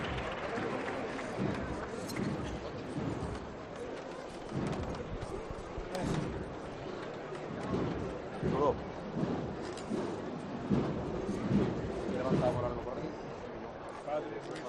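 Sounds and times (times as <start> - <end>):
large outdoor crowd clapping in a city square: 0.0 - 5.3
crowd murmuring in a city square: 0.0 - 14.6.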